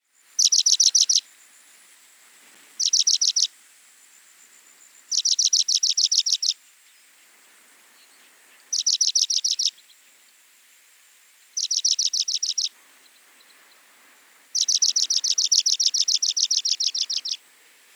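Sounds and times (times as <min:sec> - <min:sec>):
African pipit calling: 0:00.4 - 0:01.2, 0:02.8 - 0:03.5, 0:05.1 - 0:06.6, 0:08.1 - 0:09.9, 0:11.6 - 0:13.8, 0:14.5 - 0:17.5.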